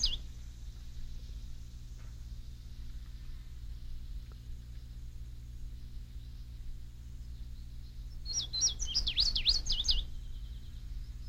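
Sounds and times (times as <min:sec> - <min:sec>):
bird singing: 0:00.0 - 0:03.3, 0:05.6 - 0:11.2
low rumble: 0:00.0 - 0:11.2.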